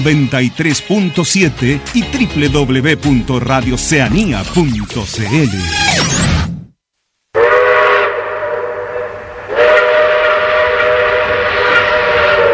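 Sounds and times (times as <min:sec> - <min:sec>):
speech: 0:00.0 - 0:06.3
steam train whistle as a train departs: 0:07.4 - 0:12.5.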